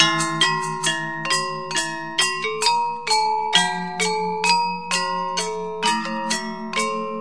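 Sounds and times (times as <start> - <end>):
gamelan music: 0.0 - 7.1.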